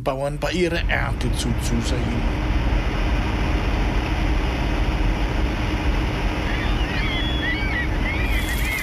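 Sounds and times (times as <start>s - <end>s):
speech: 0.0s - 2.6s
strong steady storm wind roaring: 0.5s - 8.8s
faint high chirps: 6.4s - 8.8s.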